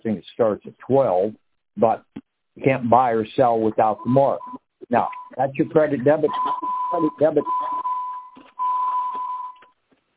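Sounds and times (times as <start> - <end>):
speech: 0.0 - 7.7
phone beeping with alerts: 4.0 - 9.8.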